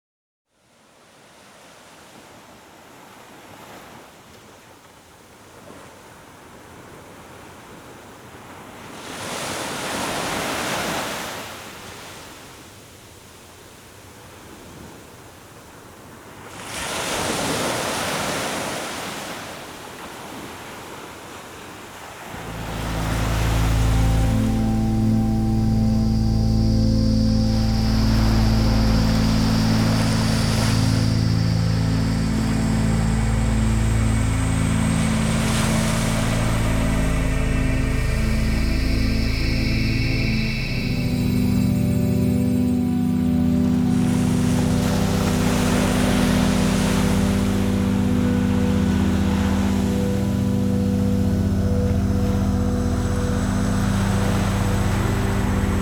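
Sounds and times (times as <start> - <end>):
ocean waves: 8.4 - 12.5, 16.4 - 21.3, 22.0 - 55.8
relaxing music: 22.3 - 55.8.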